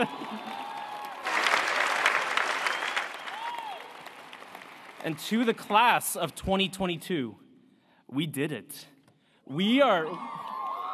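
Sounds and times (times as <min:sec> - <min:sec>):
speech: 0:00.0 - 0:00.2, 0:05.0 - 0:07.4, 0:08.1 - 0:08.9, 0:09.5 - 0:10.4
faint cheers: 0:00.0 - 0:04.2, 0:09.8 - 0:10.9
large audience applause at a veterinary school graduation ceremony in Yolo County: 0:00.0 - 0:05.9.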